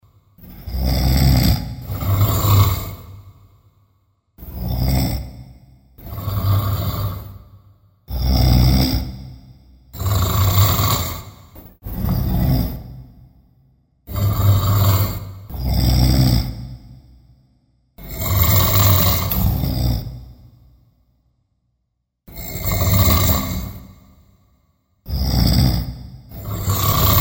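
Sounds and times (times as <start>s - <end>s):
double snoring: 0.0s - 20.9s, 22.3s - 27.1s.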